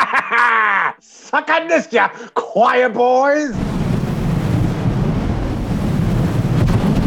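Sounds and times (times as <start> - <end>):
laughter: 0.0 - 1.0
speech: 1.3 - 3.7
flamethrower blasting with a heavy roar: 3.5 - 7.0.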